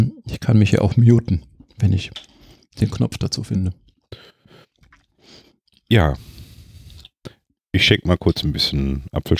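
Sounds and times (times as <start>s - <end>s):
speech: 0.0s - 4.3s, 5.9s - 6.4s, 7.7s - 9.3s
chewing cake with smacking and squelching mouth sounds: 3.9s - 5.2s.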